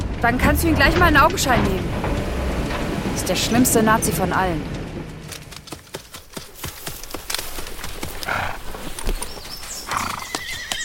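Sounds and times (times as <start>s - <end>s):
horse hooves clopping on a stud farm: 0.0s - 10.8s
speech: 0.2s - 2.1s, 3.2s - 4.8s
horse whinnying on a stud farm: 9.9s - 10.8s.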